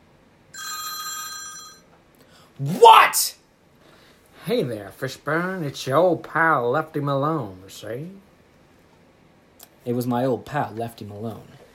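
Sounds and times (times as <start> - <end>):
telephone bell ringing with a metallic trill: 0.6 - 1.9
speech: 2.6 - 3.4, 4.5 - 8.3, 9.8 - 11.6.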